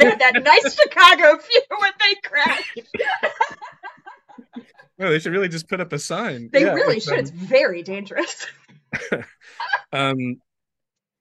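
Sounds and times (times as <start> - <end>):
laughter: 0.0 - 8.3, 9.0 - 10.3
speech: 0.1 - 3.6, 5.0 - 10.5
ill person coughing: 2.4 - 3.3, 8.3 - 9.2.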